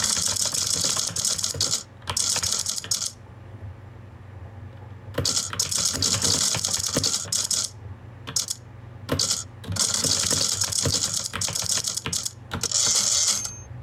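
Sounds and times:
computer keyboard typing with backspace and delete keys: 0.0 - 3.2, 5.2 - 13.7.

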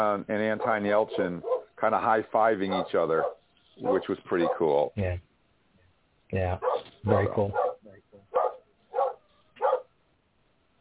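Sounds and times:
speech: 0.0 - 5.3, 6.3 - 7.6
neighbor's dog barking outside a window: 0.5 - 1.8, 2.7 - 4.8, 6.6 - 10.0.

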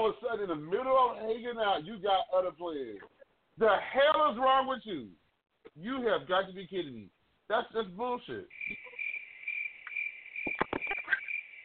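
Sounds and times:
speech: 0.0 - 5.2, 5.8 - 8.9
crickets chirping: 8.5 - 11.6.

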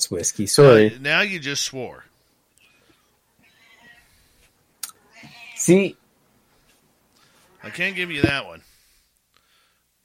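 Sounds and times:
speech: 0.0 - 2.1, 5.6 - 6.0, 7.6 - 8.7
faint cat meow: 3.4 - 4.2, 5.1 - 5.7.

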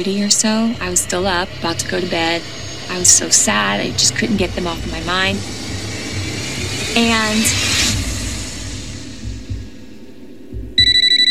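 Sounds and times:
speech: 0.0 - 5.6, 6.9 - 7.8
low rumble: 0.0 - 10.8
telephone ringing late at night: 10.8 - 11.2.

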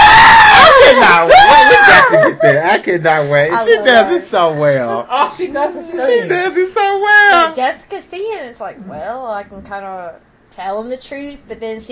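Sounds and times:
voice imitating a waitress character's high-pitched scream: 0.0 - 2.3
speech: 2.4 - 11.9.

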